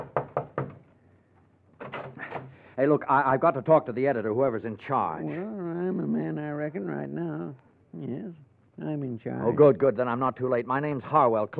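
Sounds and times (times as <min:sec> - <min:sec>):
fist pounding on the door of a copy room: 0:00.0 - 0:00.8
speech: 0:02.8 - 0:11.5.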